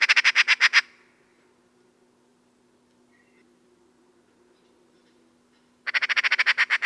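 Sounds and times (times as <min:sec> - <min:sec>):
Eurasian magpie Pica pica rattling harshly: 0:00.0 - 0:00.9, 0:05.0 - 0:06.8.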